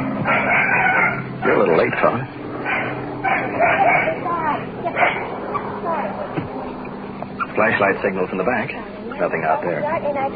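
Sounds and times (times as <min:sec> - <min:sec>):
low hum of noise: 0:00.0 - 0:10.3
woken dog barking and yipping: 0:00.2 - 0:01.2, 0:02.6 - 0:04.2, 0:04.9 - 0:05.7
speech: 0:01.8 - 0:02.4, 0:07.6 - 0:10.3.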